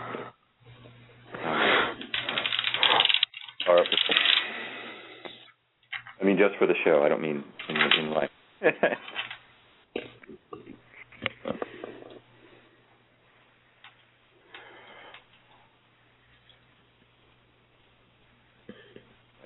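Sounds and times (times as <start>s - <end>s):
playing cards being shuffled: 1.3s - 4.6s
speech: 6.4s - 9.3s.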